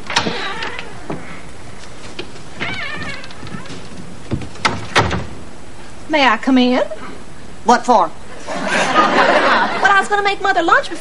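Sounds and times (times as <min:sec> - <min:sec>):
door latch clicks and rattles: 0:00.0 - 0:01.2, 0:02.6 - 0:05.3
door squeaky creak as it swings: 0:00.0 - 0:05.4
louder knocks: 0:02.2 - 0:05.4
speech: 0:06.1 - 0:07.0, 0:07.6 - 0:08.2, 0:10.0 - 0:10.9
laughter: 0:08.4 - 0:10.1.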